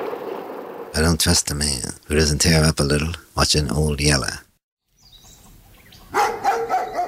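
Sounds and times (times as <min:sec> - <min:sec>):
speech: 0:01.2 - 0:04.5
dog barking in sharp yips: 0:06.1 - 0:07.0.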